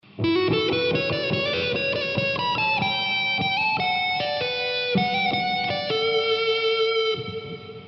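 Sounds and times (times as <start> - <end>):
electric guitar solo through a JCM900 amplifier: 0.1 - 7.8.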